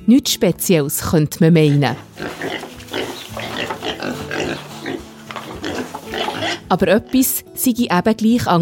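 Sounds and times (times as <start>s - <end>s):
speech: 0.1s - 2.7s, 6.7s - 8.6s
sows and piglets grunting in a pigsty pen: 1.6s - 7.2s
piglets squealing while suckling in a pigsty pen: 1.8s - 6.7s.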